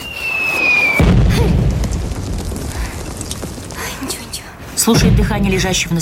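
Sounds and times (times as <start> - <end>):
explosion on a film battlefield: 0.6 - 6.0
speech: 4.8 - 6.0.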